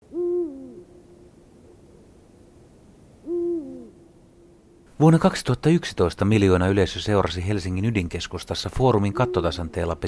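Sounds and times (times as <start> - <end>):
Eurasian eagle-owl hooting: 0.1 - 1.0, 3.2 - 4.1, 9.0 - 9.8
speech: 5.0 - 10.0.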